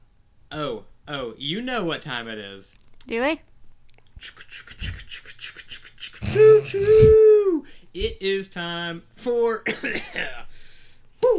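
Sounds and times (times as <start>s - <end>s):
speech: 0.5s - 3.5s, 4.2s - 4.8s, 6.3s - 10.5s
rough breathy cough: 9.7s - 10.5s.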